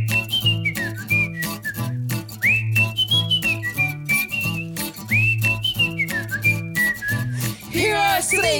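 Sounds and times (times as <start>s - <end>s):
clear bright whistled melody with sliding notes: 0.0s - 8.5s.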